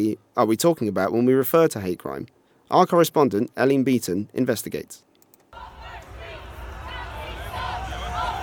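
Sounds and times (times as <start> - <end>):
speech: 0.0 - 5.1
crowd at a street protest shouting and chattering: 5.6 - 8.4.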